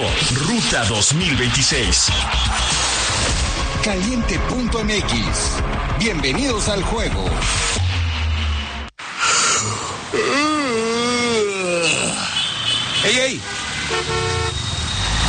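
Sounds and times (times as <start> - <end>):
steady road traffic: 0.0 - 3.6, 7.4 - 15.2
speech: 0.2 - 7.8
driver snoring and snorting in traffic: 9.2 - 12.3
car horns honking: 12.3 - 15.2.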